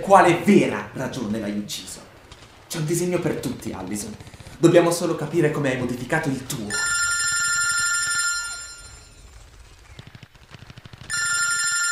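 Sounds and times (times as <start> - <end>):
speech: 0.0 - 2.1, 2.7 - 6.9
rapid clattering pulses: 2.0 - 7.0, 8.0 - 11.8
doctor's loud electric telephone bell ringing: 6.7 - 9.2, 11.1 - 11.8.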